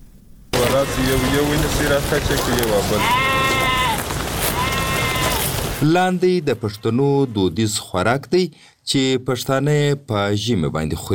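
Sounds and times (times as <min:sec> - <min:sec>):
steady noise: 0:00.0 - 0:07.3
sheep bleating before slaughter in a village: 0:00.6 - 0:05.8
speech: 0:00.8 - 0:03.3, 0:05.8 - 0:11.1.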